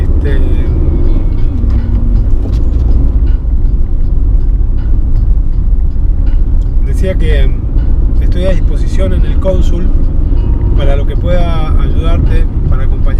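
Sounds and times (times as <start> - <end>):
car cabin road rumble with engine and tire drone: 0.0 - 13.1
speech: 8.5 - 10.0, 10.8 - 13.1.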